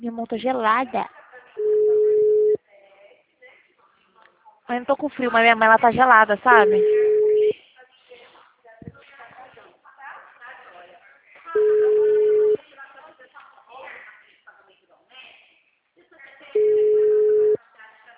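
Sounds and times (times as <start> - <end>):
speech: 0.0 - 1.2, 4.7 - 7.0
outgoing telephone call ringback tone: 1.6 - 2.6, 6.5 - 7.5, 11.6 - 12.6, 16.6 - 17.6.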